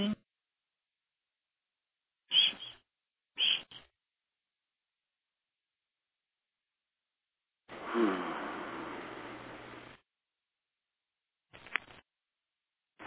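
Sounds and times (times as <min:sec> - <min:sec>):
birds calling: 0:02.3 - 0:03.9
hissing: 0:07.7 - 0:09.9.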